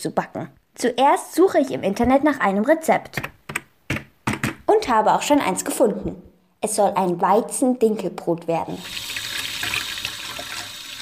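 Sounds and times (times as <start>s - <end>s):
speech: 0.0s - 3.4s, 4.8s - 9.3s
warm water running from a tap into a measuring cup: 8.7s - 11.0s.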